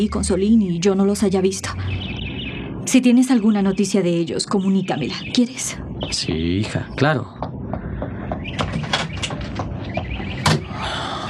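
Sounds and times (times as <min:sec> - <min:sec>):
speech: 0:00.0 - 0:02.2, 0:02.9 - 0:07.4
door handle rattling: 0:08.4 - 0:10.7.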